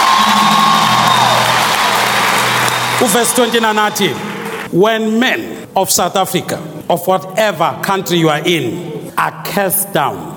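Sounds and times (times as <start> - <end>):
large crowd clapping: 0.0 - 4.7
speech: 3.0 - 10.3.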